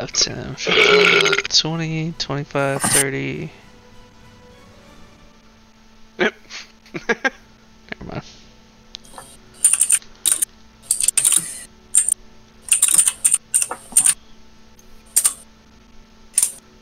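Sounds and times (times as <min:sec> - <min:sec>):
speech: 0:00.0 - 0:03.6
faint steady hum: 0:00.0 - 0:16.7
furious typing on a computer keyboard: 0:02.6 - 0:03.0, 0:09.0 - 0:14.2, 0:15.1 - 0:15.4, 0:16.4 - 0:16.6.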